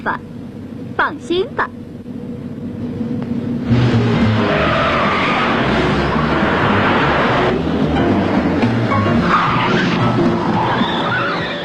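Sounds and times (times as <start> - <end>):
speech: 0.0 - 0.3, 1.0 - 1.8
speeding cars in a car chase: 3.0 - 11.6
tire skids of cars in a car chase: 3.6 - 11.6.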